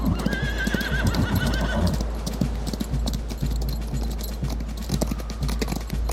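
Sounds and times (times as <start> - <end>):
horse whinnying: 0.0 - 2.0
horse hooves clip-clopping: 0.0 - 6.1.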